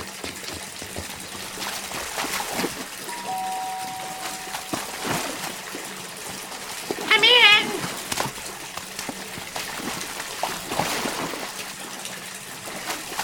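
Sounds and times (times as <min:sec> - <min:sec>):
water pouring and splashing: 0:00.0 - 0:13.2
thin tonal whine: 0:03.0 - 0:05.6.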